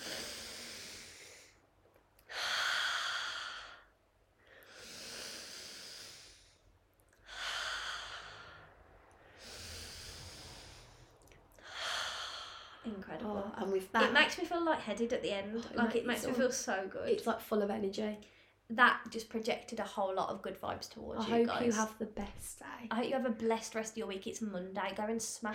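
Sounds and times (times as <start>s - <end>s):
person taking slow deep breaths during a seated breathing exercise: 0.0s - 1.6s, 2.3s - 13.0s
speech: 13.0s - 25.5s.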